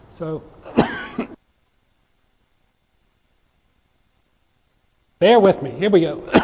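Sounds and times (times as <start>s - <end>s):
speech: 0.2s - 1.3s, 5.2s - 6.4s
man coughing during a church service: 0.7s - 1.4s, 6.3s - 6.4s.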